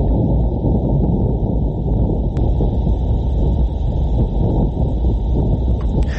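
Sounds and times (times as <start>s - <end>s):
wind on Mars recorded by rover instruments: 0.0s - 6.1s.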